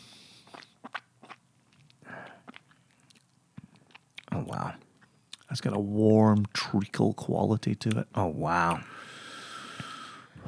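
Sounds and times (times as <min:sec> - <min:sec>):
person sipping a drink poured from a bottle: 0:00.4 - 0:01.4
wet mouth clicks and smacks: 0:00.4 - 0:04.3, 0:05.0 - 0:05.5
speech: 0:04.5 - 0:04.9, 0:05.5 - 0:08.9.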